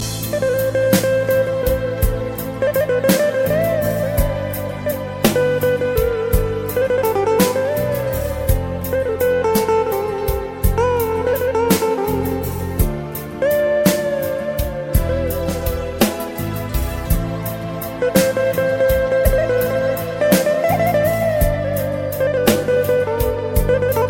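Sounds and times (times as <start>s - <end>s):
Armenian music: 0.0s - 24.0s.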